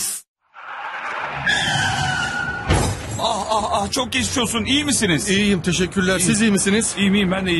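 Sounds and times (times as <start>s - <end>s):
tires screeching in a sustained high-pitched skid: 0.4s - 6.3s
loud broadband crash: 0.5s - 3.3s
speech: 3.5s - 7.5s.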